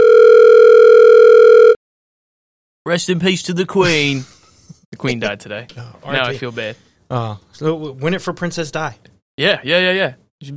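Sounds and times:
telephone dial tone of an outgoing call: 0.0 - 1.8
speech: 2.9 - 4.4, 5.0 - 10.5.

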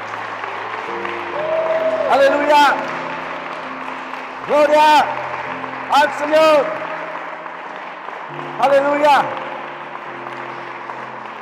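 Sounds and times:
audience applauding loudly: 0.0 - 11.3
speech: 2.1 - 2.9, 4.5 - 5.2, 5.9 - 6.8, 8.3 - 9.4.

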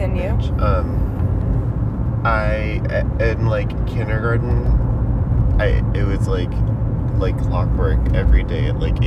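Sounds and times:
engine and road rumble inside a moving car: 0.0 - 9.0
speech: 0.4 - 1.1, 2.2 - 4.9, 5.6 - 9.0.

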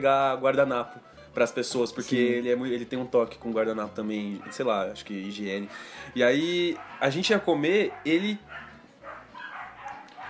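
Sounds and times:
speech: 0.0 - 8.6
neighbor's dogs barking: 4.3 - 10.2.

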